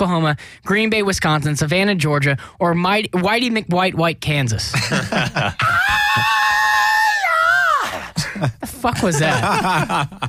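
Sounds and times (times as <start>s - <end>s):
speech: 0.0s - 6.3s, 8.4s - 10.2s
laughter: 4.8s - 6.3s, 7.9s - 10.2s
sustained high-pitched rock singer's scream: 5.6s - 8.0s.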